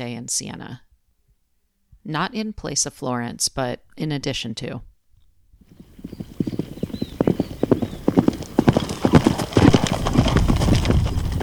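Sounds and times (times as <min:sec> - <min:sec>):
speech: 0:00.0 - 0:00.9, 0:02.0 - 0:04.9
hoofbeats of several galloping horses in a horse race: 0:05.6 - 0:11.4.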